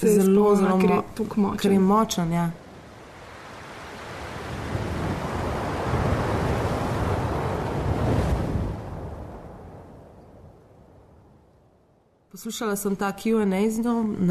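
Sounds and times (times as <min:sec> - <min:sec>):
speech: 0:00.0 - 0:02.6, 0:12.4 - 0:14.3
strong wind roaring: 0:03.2 - 0:11.2.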